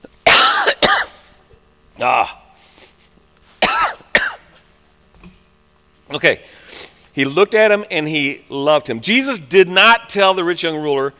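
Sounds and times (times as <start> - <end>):
person coughing in loud harsh bursts: 0.1 - 1.4, 3.6 - 4.6
speech: 2.0 - 2.4, 6.1 - 6.6, 7.2 - 11.1.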